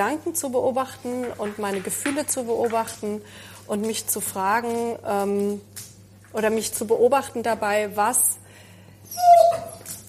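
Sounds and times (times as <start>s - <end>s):
speech: 0.0s - 8.4s
low steady hum: 0.0s - 10.0s
dog whimpering and yipping: 9.1s - 10.0s.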